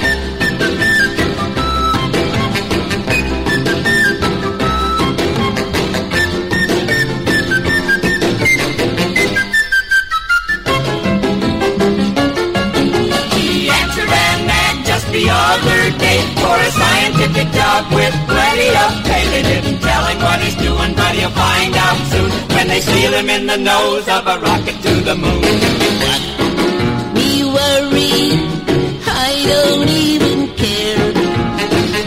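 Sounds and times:
man whistling a bright melody through a tooth gap: 0.0s - 11.0s
loud full rock and roll band: 0.0s - 32.0s
speech: 22.7s - 25.7s.

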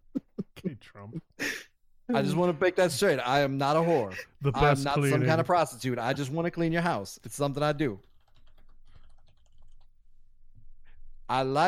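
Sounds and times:
speech: 0.8s - 8.1s, 11.3s - 11.6s
typing on a computer keyboard: 8.0s - 9.9s.

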